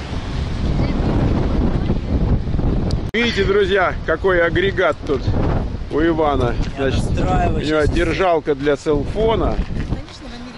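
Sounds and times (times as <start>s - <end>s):
strong wind buffeting a microphone: 0.0s - 10.5s
speech: 3.2s - 9.8s.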